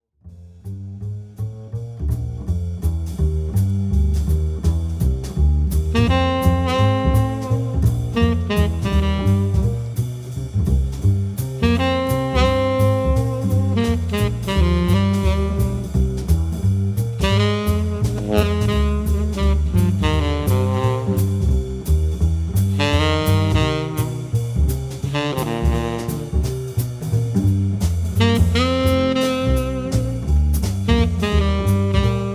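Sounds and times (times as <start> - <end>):
bass: 0.0 - 32.3
drums: 0.3 - 32.3
saxophone: 5.9 - 10.0, 11.6 - 16.2, 17.2 - 21.9, 22.7 - 27.5, 28.2 - 32.3.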